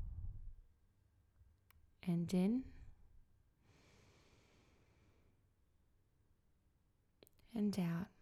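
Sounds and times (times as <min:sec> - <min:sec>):
speech: 0:02.1 - 0:02.7, 0:07.6 - 0:08.1
long deep breath out: 0:03.7 - 0:05.3.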